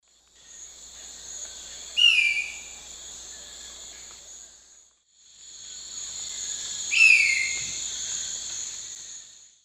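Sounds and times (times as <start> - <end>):
Xiphorhynchus ocellatus calling in the Eastern Lowlands of South America: 2.0 - 2.8, 6.9 - 7.8.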